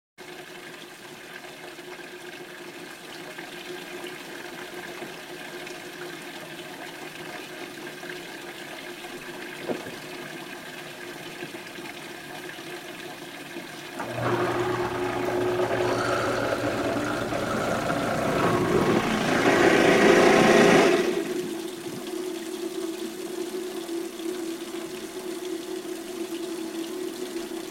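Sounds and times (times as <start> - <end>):
household water running into garbage disposal: 13.9 - 27.7.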